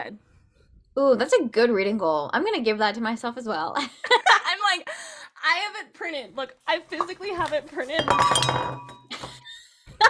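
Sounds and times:
speech: 0:00.0 - 0:00.3, 0:01.0 - 0:08.9
wine glass clinking: 0:08.0 - 0:09.1.

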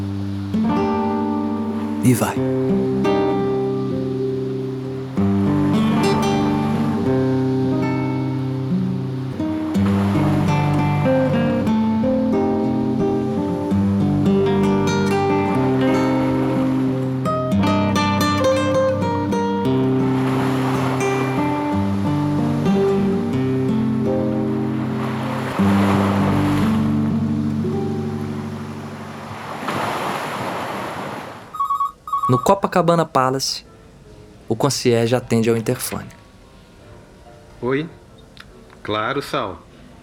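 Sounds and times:
steady sustained musical tones: 0:00.0 - 0:29.7, 0:31.5 - 0:32.8
ocean waves washing onto a sandy beach: 0:00.0 - 0:32.6
speech: 0:02.0 - 0:03.2, 0:32.5 - 0:33.7, 0:34.5 - 0:36.2, 0:37.6 - 0:38.0, 0:38.9 - 0:39.6.

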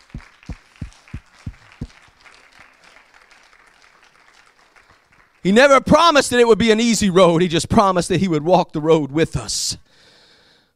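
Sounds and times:
church audience clapping hands in rhythm during a worship service: 0:00.0 - 0:06.0
speech: 0:05.4 - 0:10.1.

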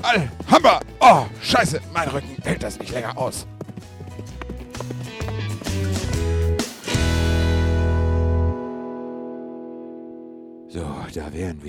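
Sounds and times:
speech: 0:00.0 - 0:03.6, 0:10.8 - 0:11.6
ridden horse's hooves clip-clopping: 0:00.0 - 0:06.4
tuneful musical backing: 0:00.0 - 0:11.1.

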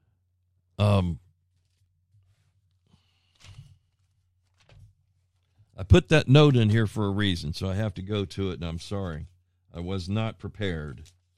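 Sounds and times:
speech: 0:00.8 - 0:01.2, 0:05.8 - 0:11.2
page of a book being turned: 0:01.5 - 0:05.7, 0:10.6 - 0:11.3.

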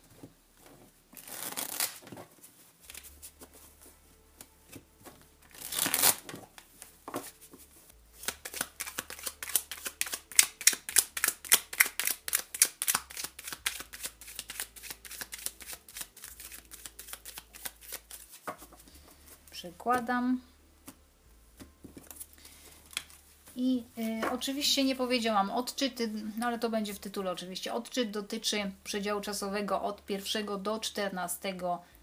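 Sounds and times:
tarot cards shuffled by hand: 0:00.2 - 0:20.1, 0:21.6 - 0:25.0
speech: 0:19.6 - 0:20.5, 0:23.6 - 0:31.9.

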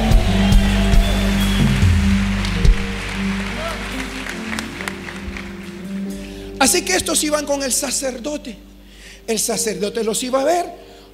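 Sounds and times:
crowd applauding: 0:00.0 - 0:06.7
speech: 0:06.6 - 0:08.7, 0:09.3 - 0:11.1.

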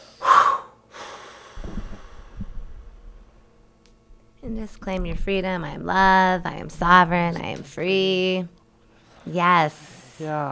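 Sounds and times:
deep breath and exhale during a guided relaxation: 0:00.0 - 0:04.4
speech: 0:04.5 - 0:08.6, 0:09.3 - 0:10.5.

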